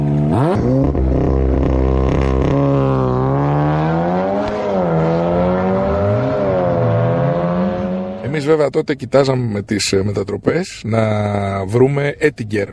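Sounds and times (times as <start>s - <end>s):
second-generation 16-valve 140 horsepower GTI car engine revving: 0.0s - 8.6s
speech: 8.5s - 12.7s.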